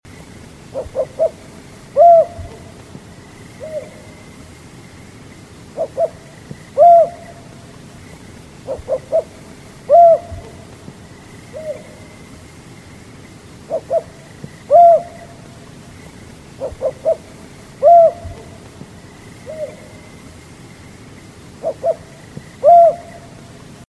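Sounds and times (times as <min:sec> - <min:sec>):
pair of Rufous-banded owls calling: 0:00.6 - 0:02.8, 0:03.5 - 0:04.3, 0:05.7 - 0:07.6, 0:08.6 - 0:10.8, 0:11.4 - 0:12.2, 0:13.5 - 0:15.5, 0:16.5 - 0:18.7, 0:19.4 - 0:20.2, 0:21.5 - 0:23.4.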